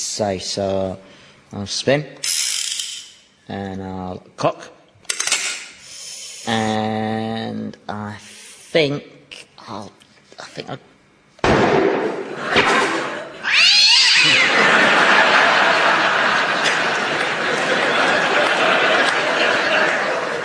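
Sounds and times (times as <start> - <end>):
speech: 0.2 - 2.4, 3.5 - 4.8, 6.5 - 10.0, 10.6 - 10.9
sharp bang: 11.4 - 13.1
laughter: 12.2 - 13.4, 14.1 - 20.4
theatre cat caterwauling: 13.4 - 14.6.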